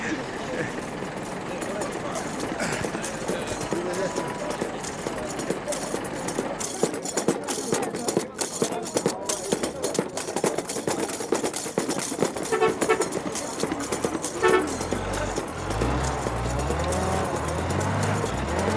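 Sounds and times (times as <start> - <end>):
laughter: 0.0 - 18.7
rattling vehicle and road noise: 0.0 - 18.7
bus horn honking: 12.4 - 13.4, 14.2 - 15.4.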